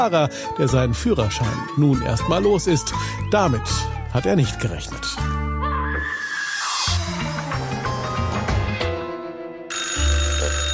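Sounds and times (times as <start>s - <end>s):
speech: 0.0s - 5.4s
dense music: 0.0s - 10.7s
telephone ringing in an electronic trill: 9.7s - 10.7s.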